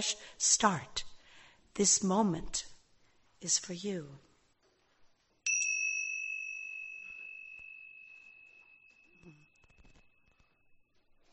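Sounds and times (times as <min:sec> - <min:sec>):
speech: 0:00.0 - 0:01.1, 0:01.8 - 0:02.7, 0:03.4 - 0:04.3
bright chime struck: 0:05.5 - 0:10.7.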